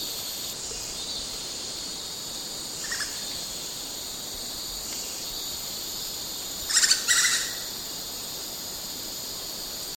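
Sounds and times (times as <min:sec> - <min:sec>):
constant hiss: 0:00.0 - 0:09.9
great slaty woodpecker calling with sharp high notes: 0:06.7 - 0:07.7.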